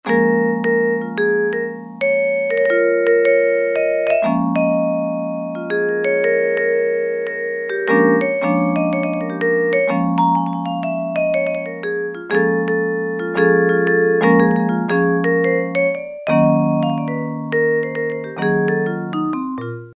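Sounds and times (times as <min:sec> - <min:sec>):
Roland U-110 synthesizer vibraphone factory patch: 0:00.1 - 0:19.9.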